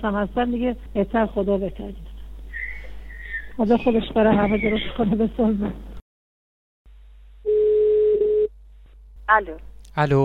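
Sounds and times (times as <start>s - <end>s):
speech: 0.0s - 2.1s, 3.6s - 5.9s, 9.3s - 10.2s
ringback tone of an outgoing phone call: 7.5s - 8.5s.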